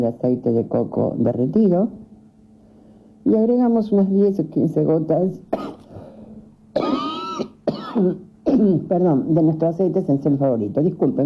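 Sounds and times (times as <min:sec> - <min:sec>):
speech: 0:00.0 - 0:02.0, 0:03.2 - 0:05.7, 0:08.0 - 0:11.2
person with the flu coughing harshly: 0:05.5 - 0:06.1, 0:06.8 - 0:08.9.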